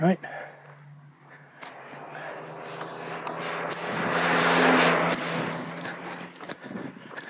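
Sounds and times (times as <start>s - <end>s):
speech: 0.0s - 0.5s
car passing on a quiet residential street: 0.2s - 7.2s.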